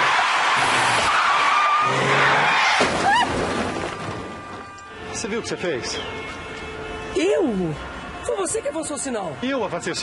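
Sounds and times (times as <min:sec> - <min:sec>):
car tires screeching in a skid in a traffic accident: 0:00.0 - 0:04.2
broadband road noise: 0:00.0 - 0:10.0
speech: 0:05.2 - 0:06.4, 0:07.1 - 0:10.0.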